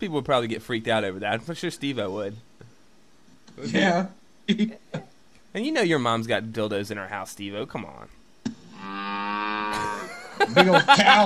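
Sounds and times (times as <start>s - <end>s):
speech: 0.0s - 2.5s, 3.6s - 8.2s, 10.4s - 11.2s
cow mooing: 8.8s - 10.0s
laughter: 9.8s - 11.2s.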